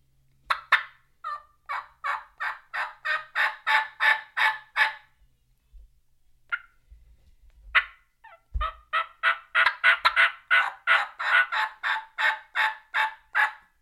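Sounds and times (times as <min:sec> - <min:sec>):
turkey hen yelping: 0:00.5 - 0:05.1, 0:06.5 - 0:06.8, 0:07.7 - 0:13.7.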